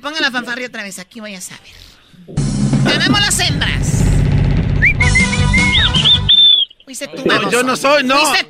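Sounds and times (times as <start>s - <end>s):
speech: 0.0s - 4.1s, 6.9s - 8.4s
person whistling short sliding notes and a trill: 4.8s - 6.8s.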